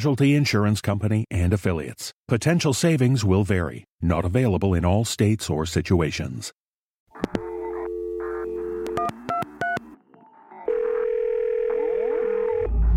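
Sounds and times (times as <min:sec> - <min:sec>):
speech: 0:00.0 - 0:06.6
telephone dial tone: 0:07.2 - 0:09.8, 0:10.6 - 0:12.8
telephone keypad beeps: 0:07.2 - 0:09.8.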